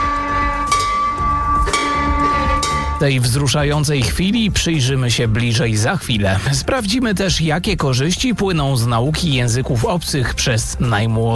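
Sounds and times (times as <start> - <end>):
newly installed bell of hope at an oncology centre being struck: 0.0 - 4.1
speech: 3.0 - 11.3.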